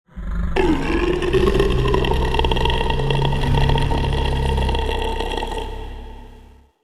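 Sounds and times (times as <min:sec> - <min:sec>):
zombie: 0:00.1 - 0:06.7.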